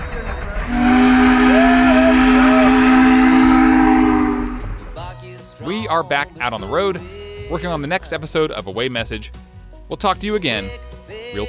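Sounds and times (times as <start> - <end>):
old-fashioned steam train whistle: 0.6 - 5.1
speech: 6.0 - 11.4.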